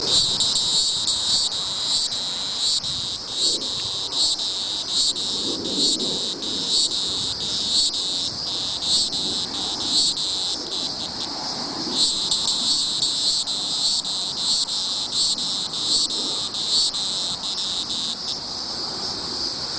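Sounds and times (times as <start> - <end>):
Neocicada hieroglyphica singing: 0.0 - 19.7.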